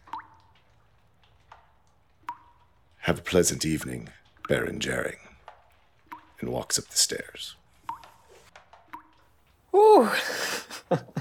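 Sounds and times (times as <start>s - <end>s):
water dripping from a small hole punctured in a bucket: 0.0s - 11.1s
speech: 3.1s - 5.3s, 6.4s - 7.6s, 10.0s - 11.1s.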